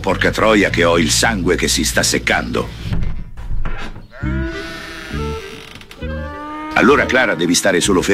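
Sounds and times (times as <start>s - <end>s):
speech: 0.0s - 3.0s, 6.8s - 8.1s
donkey braying in loud harsh bursts: 4.0s - 8.1s.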